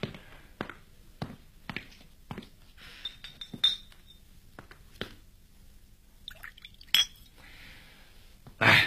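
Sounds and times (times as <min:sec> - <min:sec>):
glasses clinking in a toast: 0:03.0 - 0:04.2, 0:06.3 - 0:07.4
wine being poured: 0:06.2 - 0:07.4.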